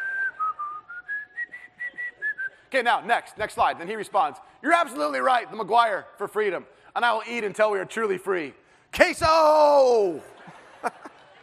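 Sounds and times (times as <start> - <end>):
whistled patriotic hymn tune: 0.0 - 2.7
speech: 2.7 - 11.0
laughter: 10.0 - 11.4.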